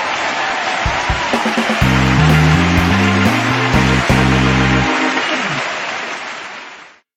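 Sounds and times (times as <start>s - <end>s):
race finish victory sound: 0.8s - 6.2s.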